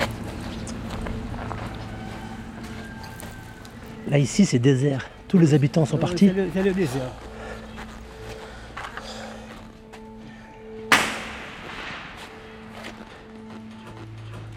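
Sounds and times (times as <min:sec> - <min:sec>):
speech: 0:04.1 - 0:07.3
police gunshot in a deserted area: 0:10.9 - 0:13.2.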